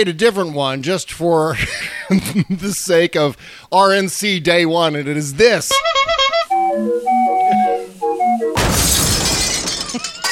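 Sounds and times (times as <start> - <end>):
speech: 0.0 - 6.0, 6.7 - 7.2
jaunty circus-style tune: 5.7 - 8.6
clown car crashing into a wall: 8.6 - 10.1
glass shattering: 8.6 - 10.2.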